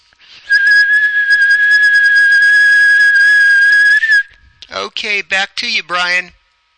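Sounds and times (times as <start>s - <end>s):
person whistling a long steady high-pitched tone: 0.4s - 4.4s
speech: 5.0s - 6.4s.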